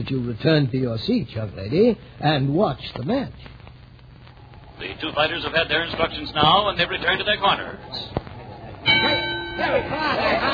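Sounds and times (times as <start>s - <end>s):
speech: 0.0s - 3.6s, 4.8s - 8.2s, 9.0s - 10.5s
crowd voices at a boxing match: 4.8s - 10.5s
boxing ring bell ringing to start a round at a boxing match: 8.8s - 10.5s.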